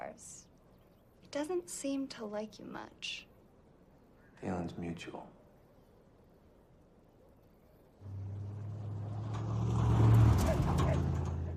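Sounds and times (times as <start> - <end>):
speech: 1.3 - 3.3, 4.4 - 5.4
sheriff's truck engine rumbling while driving down a street: 8.0 - 11.5.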